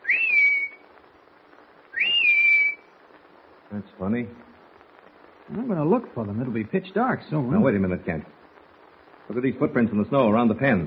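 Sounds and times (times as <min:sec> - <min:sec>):
person whistling a call outdoors in snow: 0:00.0 - 0:00.8, 0:01.9 - 0:02.8
speech: 0:03.7 - 0:04.5, 0:05.5 - 0:08.4, 0:09.3 - 0:10.8.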